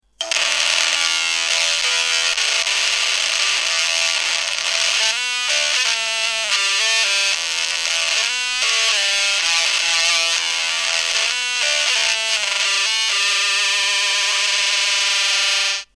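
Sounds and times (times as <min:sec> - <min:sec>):
ringtone: 0:00.2 - 0:15.9.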